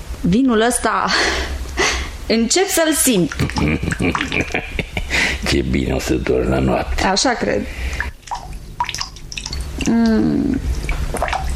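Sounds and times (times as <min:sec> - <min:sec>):
speech: 0:00.2 - 0:01.6, 0:02.3 - 0:04.8, 0:05.5 - 0:08.0, 0:09.8 - 0:11.3
leaky faucet dripping into water: 0:03.2 - 0:04.6, 0:07.8 - 0:11.5
laughter: 0:03.3 - 0:05.7.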